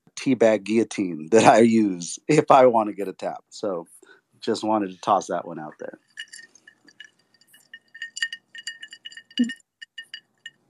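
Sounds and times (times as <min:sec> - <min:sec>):
speech: 0:00.2 - 0:06.3, 0:09.4 - 0:09.6
ice cubes clinking against a glass: 0:06.0 - 0:10.6.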